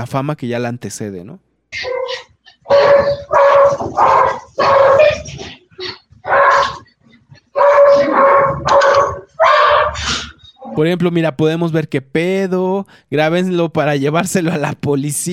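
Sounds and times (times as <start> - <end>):
speech: 0.0 - 5.9, 10.8 - 15.3
several dogs barking and yelping loudly: 1.8 - 10.8.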